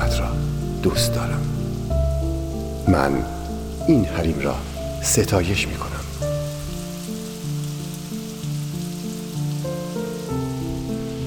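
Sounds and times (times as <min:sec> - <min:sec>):
slow sustained musical notes: 0:00.0 - 0:11.2
steady rain dripping off a sloped roof: 0:00.0 - 0:11.2
speech: 0:00.8 - 0:01.6, 0:02.9 - 0:06.0.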